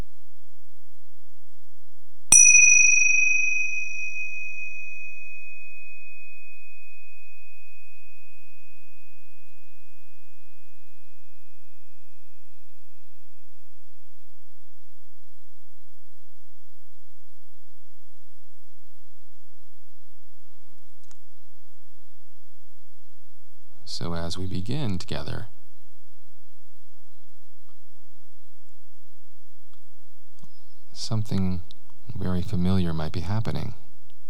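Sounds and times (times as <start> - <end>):
gong ringing: 2.3 - 4.9
speech: 23.9 - 25.6, 31.0 - 33.8.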